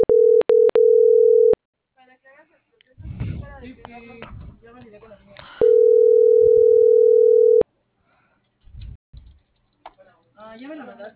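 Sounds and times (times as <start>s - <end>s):
telephone dial tone while a call is being dialled: 0.0s - 1.6s, 5.6s - 7.6s.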